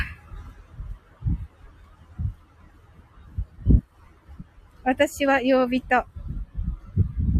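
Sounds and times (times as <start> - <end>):
low rumbling bursts of car noise outdoors: 0.0 - 7.3
steady hum: 0.0 - 7.3
speech: 4.9 - 6.1.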